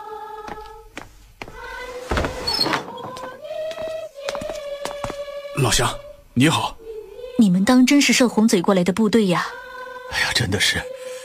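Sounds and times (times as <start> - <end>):
door creaking open: 2.0 - 3.4
speech: 5.6 - 6.8, 7.4 - 10.9.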